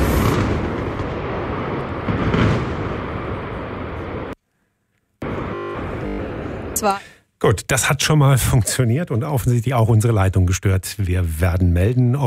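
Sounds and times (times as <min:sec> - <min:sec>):
demolition blast of a boiler house: 0:00.0 - 0:04.4
speech: 0:06.8 - 0:12.2.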